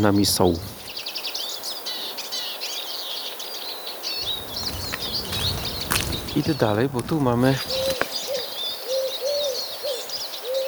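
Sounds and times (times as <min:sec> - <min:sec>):
speech: 0:00.0 - 0:00.8, 0:06.4 - 0:07.8
small birds chirping and twittering: 0:00.0 - 0:10.6
Eurasian collared dove cooing: 0:04.2 - 0:10.6.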